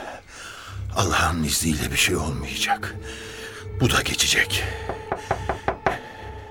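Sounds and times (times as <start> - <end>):
speech: 1.0 - 5.1
firm knocks on a door by police arriving for a raid: 4.8 - 6.0.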